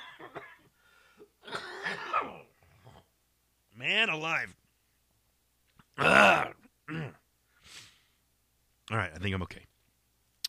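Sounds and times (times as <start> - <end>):
person coughing: 0.0 - 2.5, 6.0 - 7.2
throat-clearing coughs: 1.4 - 3.1, 6.0 - 7.2
speech: 3.9 - 4.6, 8.9 - 9.7.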